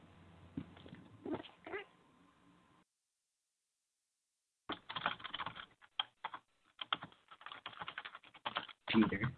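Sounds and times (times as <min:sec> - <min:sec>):
rapid typing on a computer keyboard by a quiz participant: 0:04.7 - 0:09.3
speech: 0:09.0 - 0:09.3.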